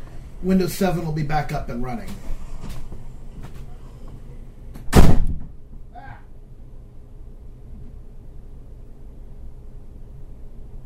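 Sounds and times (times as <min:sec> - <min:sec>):
low room hum: 0:00.0 - 0:10.8
speech: 0:00.4 - 0:02.4
door closing thud: 0:04.8 - 0:05.6.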